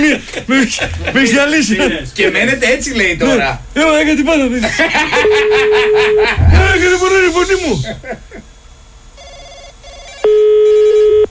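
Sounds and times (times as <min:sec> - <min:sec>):
laughter: 0:00.0 - 0:01.8, 0:04.5 - 0:08.5
speech: 0:00.1 - 0:08.3
telephone ringing during a prank call: 0:05.1 - 0:06.4, 0:09.2 - 0:11.3.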